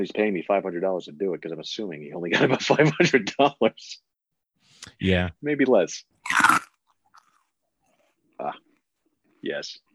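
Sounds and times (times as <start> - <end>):
speech: 0.0 - 4.1, 4.8 - 6.7, 8.4 - 8.7, 9.4 - 9.9
loud crunching chews: 6.2 - 8.1.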